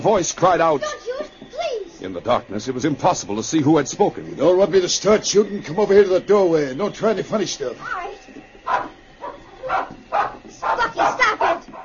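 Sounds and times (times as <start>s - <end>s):
speech: 0.0s - 1.1s, 2.0s - 8.1s
small dog yapping: 8.7s - 11.8s.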